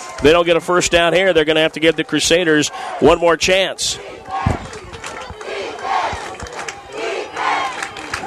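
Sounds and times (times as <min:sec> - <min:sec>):
large crowd roaring and cheering at an American football game: 0:00.0 - 0:08.2
speech: 0:00.2 - 0:04.4.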